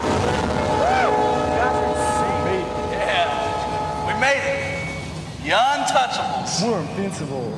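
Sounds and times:
train horn: 0:00.0 - 0:05.5
indistinct voices: 0:00.0 - 0:07.5
train rumbling past: 0:00.0 - 0:07.5
speech: 0:06.1 - 0:07.5.

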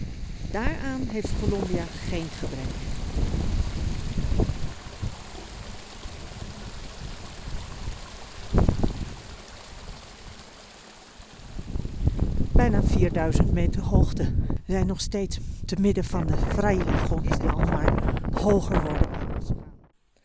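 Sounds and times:
small mountain stream flowing downhill: 0:00.0 - 0:14.0
wind buffeting on the microphone: 0:00.0 - 0:19.9
speech: 0:00.5 - 0:03.3, 0:12.7 - 0:19.0.

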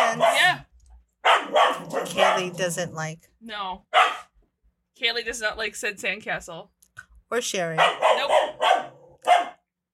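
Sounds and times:
dog barking: 0:00.0 - 0:02.7, 0:03.9 - 0:04.4, 0:07.8 - 0:09.7
speech: 0:02.4 - 0:04.2, 0:05.0 - 0:08.9.

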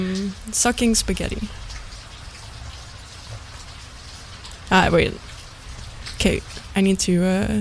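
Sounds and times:
speech: 0:00.0 - 0:01.6, 0:04.7 - 0:05.3, 0:06.2 - 0:07.5
steady rain falling: 0:00.0 - 0:07.5.

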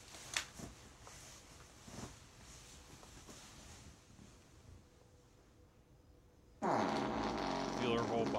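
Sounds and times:
cartoonish fake fart sound effect: 0:06.6 - 0:08.3
speech: 0:07.9 - 0:08.3.

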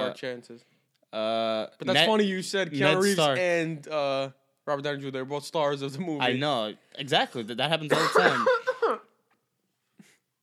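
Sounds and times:
speech: 0:00.1 - 0:09.0
cough: 0:07.9 - 0:09.1.

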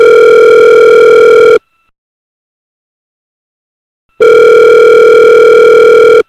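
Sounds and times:
electronic ringback tones of an outgoing phone call on speakerphone: 0:00.0 - 0:01.6, 0:04.2 - 0:06.2.

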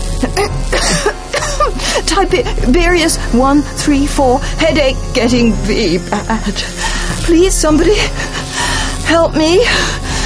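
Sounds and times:
speech: 0:00.2 - 0:08.4, 0:09.1 - 0:10.0
man coughing into a silken handkerchief: 0:00.3 - 0:01.8.

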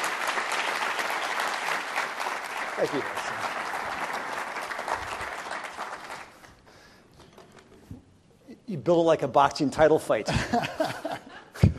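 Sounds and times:
crowd applauding: 0:00.0 - 0:06.6
speech: 0:02.8 - 0:03.5, 0:08.7 - 0:11.3.

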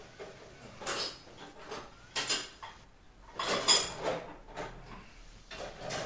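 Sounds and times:
kitchen dishes clinking and clattering: 0:00.1 - 0:06.0.

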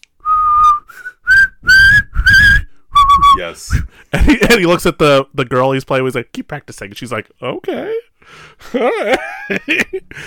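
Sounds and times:
person whistling a tune: 0:00.2 - 0:03.8
speech: 0:03.4 - 0:10.2
laughter: 0:04.1 - 0:04.7, 0:08.6 - 0:10.2.

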